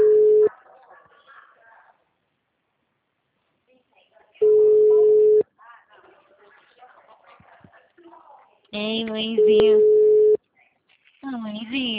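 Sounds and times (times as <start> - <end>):
telephone ringback tone on an outgoing call: 0.0 - 0.5, 4.4 - 5.4, 9.4 - 10.4
speech: 8.8 - 10.0.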